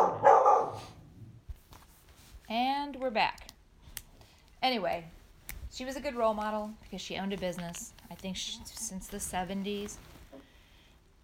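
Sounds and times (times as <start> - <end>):
household dog barking: 0.0 - 1.0
speech: 3.1 - 3.5, 4.6 - 10.1.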